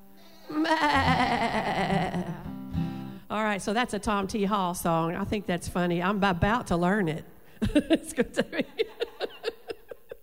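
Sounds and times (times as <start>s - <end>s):
person imitating a goat bleat: 0.2s - 3.0s
laughter: 0.6s - 2.5s, 7.6s - 10.2s
speech: 3.6s - 9.0s.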